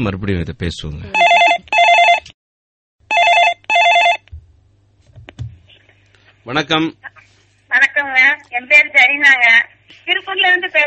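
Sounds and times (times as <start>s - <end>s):
speech: 0.0s - 1.7s, 6.4s - 10.8s
telephone ringing with an incoming call: 1.2s - 2.3s, 3.1s - 4.3s.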